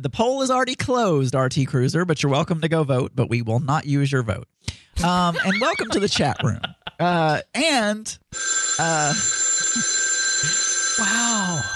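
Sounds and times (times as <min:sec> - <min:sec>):
speech: 0:00.0 - 0:11.7
laughter: 0:05.0 - 0:07.2
telephone ringing: 0:08.4 - 0:11.7.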